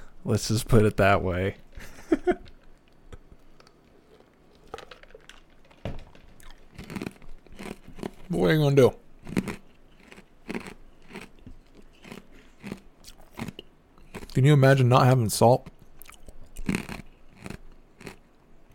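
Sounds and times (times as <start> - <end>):
speech: 0.2 - 2.5, 8.3 - 9.0, 14.4 - 15.7
ice being chewed close to the microphone: 2.5 - 8.4, 9.2 - 14.4, 15.6 - 18.7.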